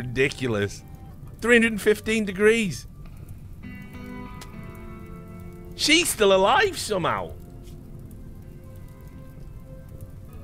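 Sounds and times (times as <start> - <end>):
speech: 0.0 - 2.9, 5.8 - 7.4
steady rain falling with a low rumbling wash: 0.0 - 10.4.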